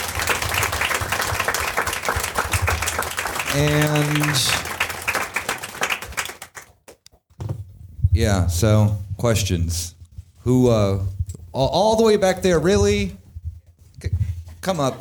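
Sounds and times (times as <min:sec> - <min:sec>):
crowd applauding: 0:00.0 - 0:07.0
speech: 0:03.5 - 0:04.7, 0:08.2 - 0:13.2, 0:14.6 - 0:14.9.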